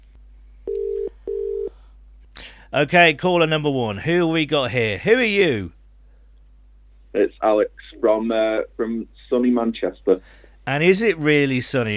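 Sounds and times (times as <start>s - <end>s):
telephone dialing tones: 0.7s - 1.7s
speech: 2.7s - 5.8s, 7.1s - 11.9s.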